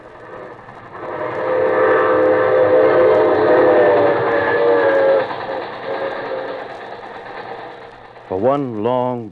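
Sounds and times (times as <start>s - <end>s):
train racing away rumbling: 0.0s - 9.2s
sustained horn-like train tone: 0.4s - 6.8s
speech: 8.5s - 9.2s.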